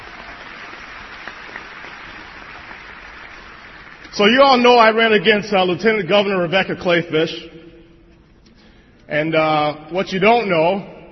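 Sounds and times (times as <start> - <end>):
audience applause at a nonpartisan event: 0.0 - 4.1
speech: 4.2 - 7.6, 9.1 - 10.9.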